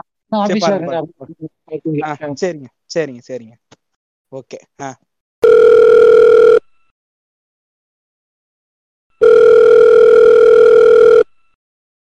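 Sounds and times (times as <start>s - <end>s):
speech: 0.3s - 3.7s, 4.3s - 6.2s
telephone ringing for an incoming call: 5.4s - 6.6s, 9.2s - 11.3s.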